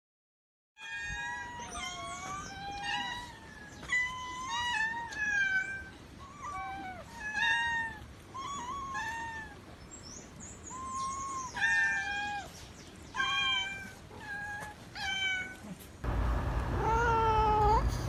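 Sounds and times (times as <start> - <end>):
kitten meowing: 0.8 - 9.6, 10.7 - 12.5, 13.2 - 15.8, 16.8 - 17.9.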